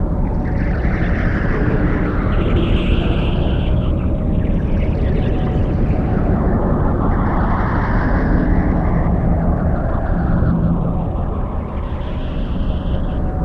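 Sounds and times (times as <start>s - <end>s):
ambient black hole drone: 0.0s - 13.4s.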